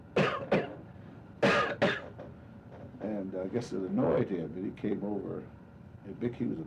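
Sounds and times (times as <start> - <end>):
person imitating a raspy cough: 0.2 - 0.8, 1.4 - 2.1
speech: 3.2 - 6.6.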